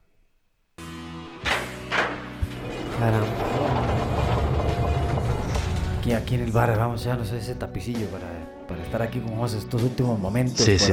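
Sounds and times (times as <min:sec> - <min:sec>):
door swinging shut with a dull thud: 0:01.3 - 0:06.7
speech: 0:03.0 - 0:03.4, 0:06.1 - 0:10.9.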